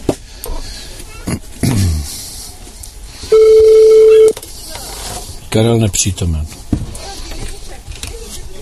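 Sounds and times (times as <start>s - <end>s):
telephone ringback tone of an outgoing phone call: 3.3s - 4.4s
speech: 5.6s - 6.6s.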